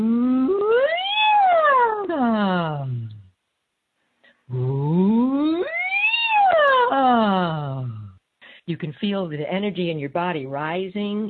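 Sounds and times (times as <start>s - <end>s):
single voice imitating a siren as an energy exercise: 0.0s - 3.2s, 4.5s - 8.1s
speech: 8.8s - 11.2s.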